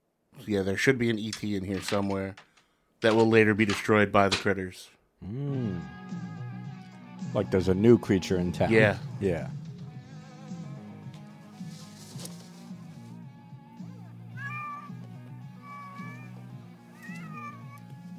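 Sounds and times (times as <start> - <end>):
speech: 0.5 - 6.2, 7.3 - 9.6
cat in a movie meowing: 14.3 - 18.1.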